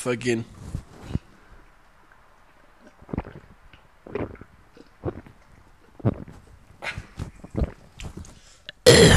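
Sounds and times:
speech: 0.0s - 1.2s
person gulping beer with wet swallows and throaty glugs: 2.8s - 9.1s.

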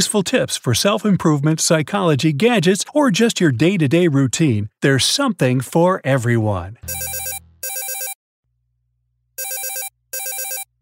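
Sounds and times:
speech: 0.0s - 7.2s
telephone ringing in trilling electronic bursts: 6.9s - 8.2s, 9.4s - 10.7s.

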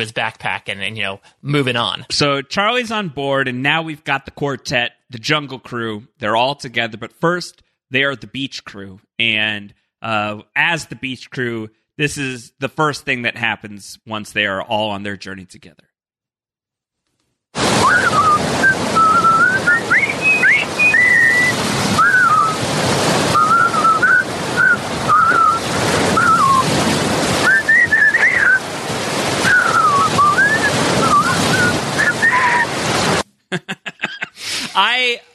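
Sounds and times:
speech: 0.0s - 15.9s, 17.5s - 18.6s, 33.5s - 34.0s, 34.8s - 35.3s
steady rush of ocean waves: 17.6s - 33.2s
wind: 17.6s - 33.2s
four people walking together whistling a jaunty marching tune: 17.8s - 22.6s, 23.3s - 26.7s, 27.4s - 28.6s, 29.4s - 32.7s
laughter: 33.5s - 34.8s.

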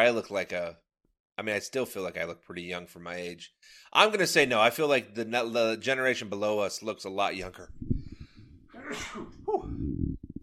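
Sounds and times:
speech: 0.0s - 8.1s, 8.9s - 10.1s
subdued sneeze: 8.8s - 9.7s.

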